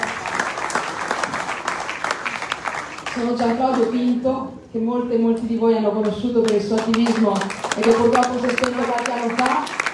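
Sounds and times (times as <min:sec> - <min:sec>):
audience applause: 0:00.0 - 0:03.2, 0:07.4 - 0:09.9
speech: 0:03.2 - 0:09.8.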